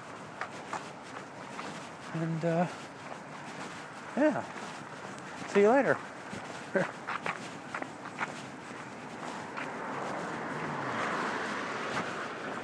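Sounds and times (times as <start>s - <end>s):
footsteps crunching: 0.0s - 12.6s
speech: 2.1s - 3.0s, 4.2s - 4.6s, 5.5s - 6.1s, 6.7s - 7.0s
car rumbling past: 8.4s - 12.6s.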